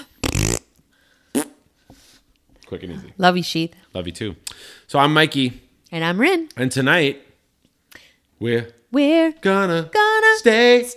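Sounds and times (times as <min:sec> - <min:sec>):
wet buzzing raspberries blown with the lips into the microphone: 0:00.0 - 0:01.6
speech: 0:02.7 - 0:07.2, 0:08.4 - 0:10.9.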